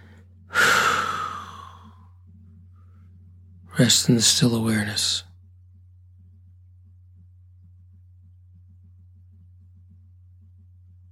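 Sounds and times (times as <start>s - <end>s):
single long breath blown out forcefully: 0.5s - 1.8s
speech: 3.8s - 5.3s.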